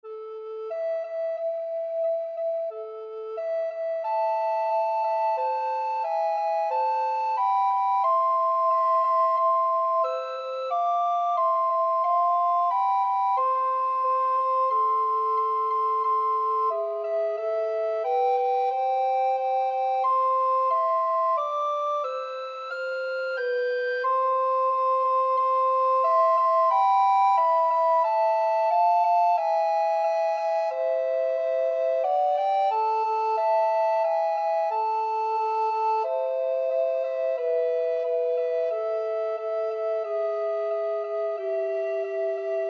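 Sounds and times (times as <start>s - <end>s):
alto recorder duet: 0.0s - 42.6s.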